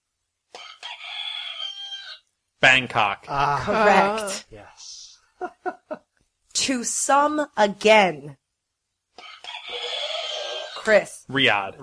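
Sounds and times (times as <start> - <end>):
rooster crowing: 0.6 - 2.2, 9.2 - 10.8
speech: 2.6 - 6.0, 6.6 - 8.4, 10.8 - 11.8
laughter: 5.4 - 6.0.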